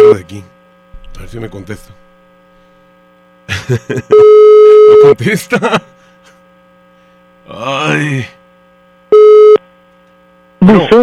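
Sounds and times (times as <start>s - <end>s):
speech: 0.2s - 0.6s, 1.2s - 2.1s, 3.5s - 5.9s, 7.5s - 8.4s, 10.6s - 11.0s
laughter: 3.5s - 4.1s, 5.2s - 5.9s
steady mid-pitched electronic telephone tone: 4.1s - 5.2s, 9.1s - 9.6s.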